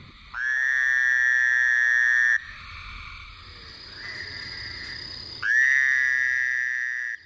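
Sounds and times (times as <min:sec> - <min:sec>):
quiet steady insect-like hum: 0:00.0 - 0:07.2
Fowler's toad calling with nasal buzzing trills: 0:00.3 - 0:02.4, 0:04.0 - 0:07.2.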